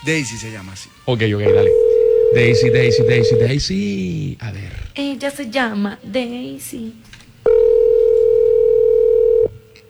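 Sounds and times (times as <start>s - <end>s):
speech: 0.0s - 7.2s
quiet telephone line noise: 1.3s - 3.7s, 7.4s - 9.8s
telephone ringback tone of an unanswered call: 1.4s - 3.6s, 7.5s - 9.8s.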